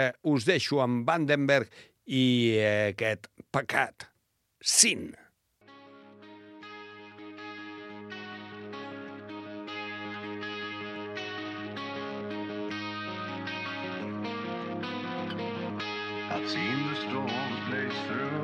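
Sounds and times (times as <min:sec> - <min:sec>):
speech: 0:00.0 - 0:05.2
distorted electric guitars playing a hard rock riff: 0:08.6 - 0:18.4.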